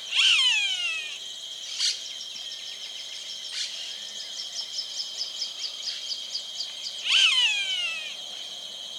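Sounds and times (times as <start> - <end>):
Rupornis magnirostris calling: 0.1 - 1.2, 7.1 - 8.2.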